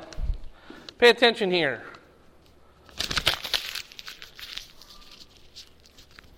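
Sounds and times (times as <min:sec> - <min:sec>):
speech: 0:01.0 - 0:01.9
paper airplane being crumpled into a ball: 0:02.8 - 0:06.3.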